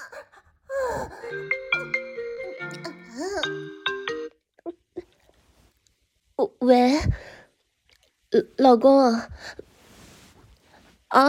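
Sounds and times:
speech: 1.3 - 1.6, 6.6 - 7.2, 8.4 - 9.6
phone ringing with a melodic electronic tune: 1.3 - 4.4.

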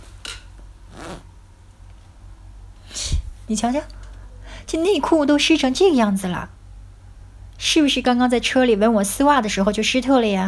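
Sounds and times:
low steady hum: 0.0 - 10.4
zipper being unzipped on trousers: 0.9 - 1.3
speech: 3.5 - 4.0, 4.7 - 6.6, 7.6 - 10.4.

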